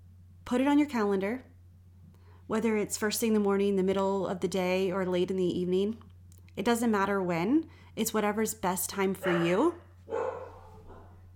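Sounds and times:
low steady hum: 0.0s - 11.3s
speech: 0.5s - 1.5s, 2.5s - 10.2s
pet dog barking: 9.2s - 11.2s.

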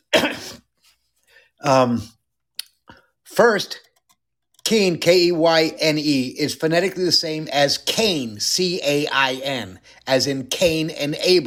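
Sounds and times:
man clearing his throat with a rasp and gravelly grunt: 0.0s - 0.7s
speech: 1.6s - 2.2s, 3.4s - 3.9s, 4.7s - 11.4s.

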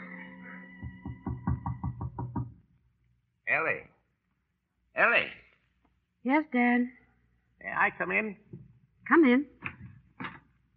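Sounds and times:
knocking on a door: 0.8s - 2.7s
speech: 3.5s - 3.9s, 5.0s - 5.4s, 6.2s - 7.0s, 7.8s - 8.4s, 9.1s - 9.6s.

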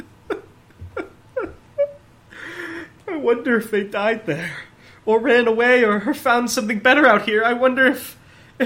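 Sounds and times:
person sobbing: 0.0s - 3.3s
speech: 3.2s - 8.6s.

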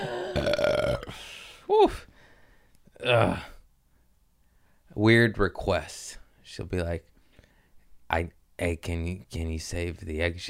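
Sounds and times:
loud drawn-out burp: 0.0s - 1.2s
speech: 0.4s - 2.1s, 3.0s - 3.5s, 5.0s - 7.1s, 8.1s - 10.4s.

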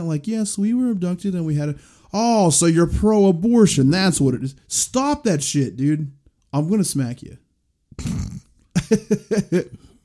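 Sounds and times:
speech: 0.0s - 7.4s, 8.0s - 9.8s
short low rough burp: 7.9s - 8.6s
laughter: 8.8s - 9.8s.

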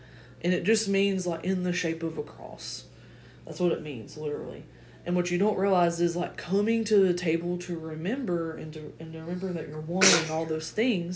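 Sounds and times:
speech: 0.4s - 2.9s, 3.5s - 11.1s
sneeze: 10.0s - 10.6s.

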